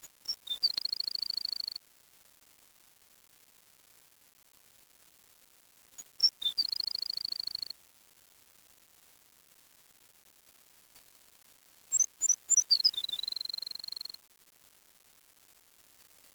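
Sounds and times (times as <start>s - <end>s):
bird chirping and trilling: 0.3s - 1.7s, 6.2s - 7.7s, 11.9s - 14.2s.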